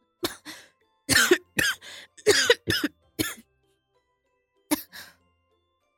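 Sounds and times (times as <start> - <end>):
man coughing hard after choking on soup: 1.1 - 3.4.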